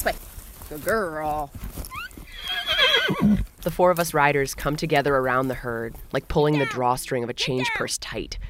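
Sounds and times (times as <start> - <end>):
speech: 0.0 - 1.7, 3.2 - 8.4
faint hoof thuds: 0.0 - 6.8
mare whinnying: 1.9 - 3.5
mare snorting: 2.2 - 3.5.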